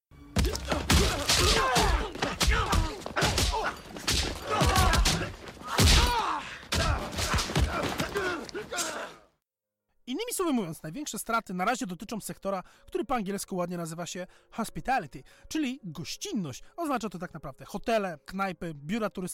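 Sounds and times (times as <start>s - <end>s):
punch impacts in a martial arts film fight scene: 0.4s - 8.4s
fighters grunting and gasping: 0.4s - 9.3s
speech: 10.4s - 19.3s.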